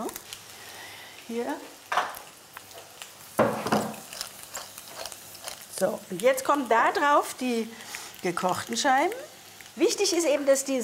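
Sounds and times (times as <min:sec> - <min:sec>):
food sizzling in a frying pan: 0:00.0 - 0:10.8
speech: 0:01.3 - 0:02.1, 0:05.8 - 0:10.8
food dropping back into a frying pan: 0:01.6 - 0:04.1.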